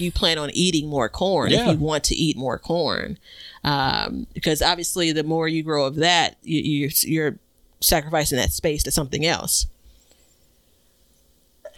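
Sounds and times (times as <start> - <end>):
speech: 0.0 - 9.7
stifled sneeze: 1.5 - 1.8.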